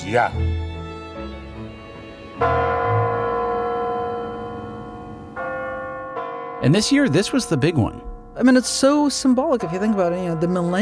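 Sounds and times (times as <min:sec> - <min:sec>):
speech: 0:00.1 - 0:00.5, 0:02.4 - 0:02.6, 0:06.6 - 0:10.7
large bells of the Kremlin tower clock by Red Square striking midnight: 0:02.4 - 0:10.7.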